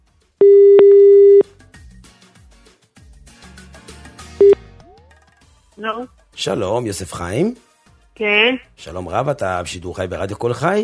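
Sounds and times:
ringback tone as a radio host dials a listener from the studio: 0.4s - 1.4s
speech: 5.8s - 10.8s.

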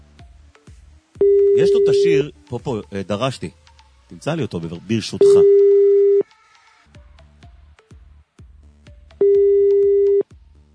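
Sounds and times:
ringback tone of an unanswered telephone call: 1.2s - 2.2s, 5.2s - 6.2s, 9.2s - 10.2s
speech: 1.6s - 5.6s.

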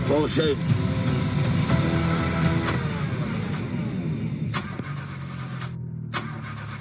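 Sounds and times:
speech: 0.2s - 0.9s
car engine cranking but failing to start due to engine fault: 1.7s - 6.7s.

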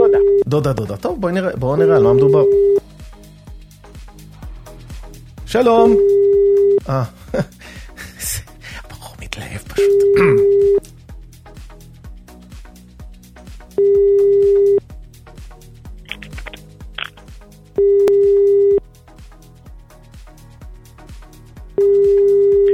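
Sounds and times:
phone ringback tone on an unanswered call: 0.0s - 0.4s, 1.8s - 2.8s, 5.8s - 6.8s, 9.8s - 10.8s, 13.8s - 14.8s, 17.8s - 18.8s, 21.8s - 22.7s
speech: 0.5s - 2.7s, 5.5s - 6.2s, 6.9s - 7.6s, 9.8s - 10.5s
music with a beat: 1.2s - 22.7s.

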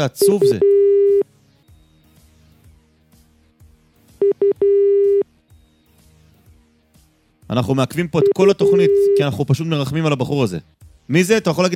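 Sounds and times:
speech: 0.0s - 0.8s, 7.5s - 11.7s
telephone line beeps while a caller waits on hold: 0.2s - 1.2s, 4.2s - 5.2s, 8.2s - 9.3s.

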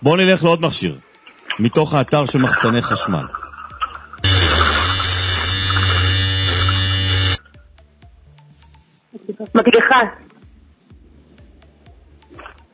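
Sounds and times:
speech: 0.0s - 3.4s, 9.4s - 10.2s
electric hair clipper buzzing: 4.2s - 7.4s.

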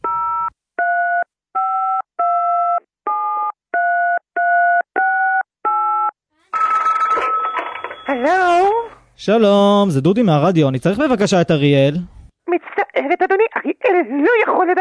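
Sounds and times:
telephone ringing tone beeps while calling someone: 0.1s - 8.2s
speech: 8.2s - 8.5s, 9.2s - 12.2s, 13.0s - 14.7s.

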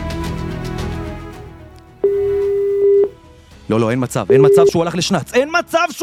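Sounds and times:
telephone dial tone: 2.0s - 3.1s, 4.3s - 4.7s
speech: 3.7s - 6.0s.

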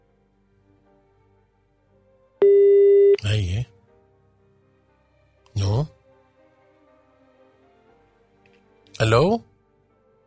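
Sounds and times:
telephone ringback tone on an outgoing call: 2.4s - 3.2s
speech: 9.0s - 9.5s.

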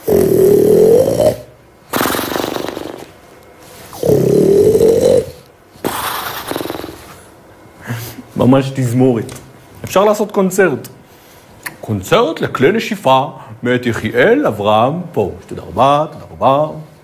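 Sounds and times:
person imitating snoring of people in a shelter: 0.0s - 3.2s, 3.9s - 7.2s
speech: 8.4s - 11.0s, 11.9s - 16.9s.

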